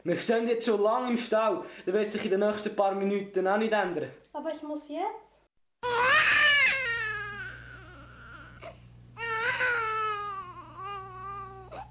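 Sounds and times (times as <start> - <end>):
speech: 0.0 - 5.3
baby crying: 5.8 - 11.8
steady low hum: 5.8 - 11.8.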